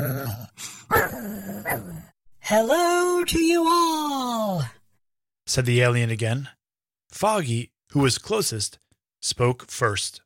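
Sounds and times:
robot dog growling: 0.0s - 2.1s
speech: 2.5s - 4.7s, 5.5s - 10.2s.

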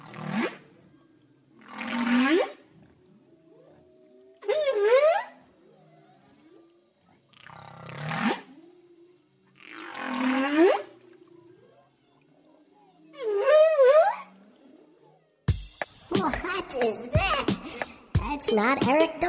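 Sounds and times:
whale calling in long rising sweeping moans underwater: 0.0s - 15.4s
speech: 16.2s - 19.2s.

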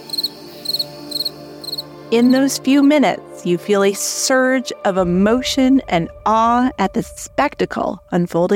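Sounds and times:
crickets chirping in rapid high-pitched trills: 0.0s - 2.6s
speech: 2.1s - 8.5s.

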